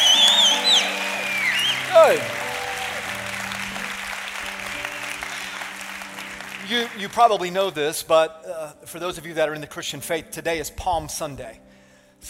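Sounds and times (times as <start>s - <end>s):
sharp piercing whistles gliding up and down: 0.0s - 2.3s
crowd clapping: 0.0s - 7.8s
speech: 2.1s - 2.4s, 6.7s - 12.2s.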